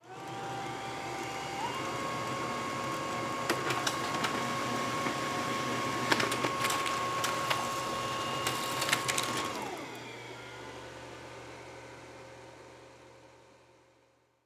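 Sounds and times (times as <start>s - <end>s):
laser printer: 0.0s - 10.8s.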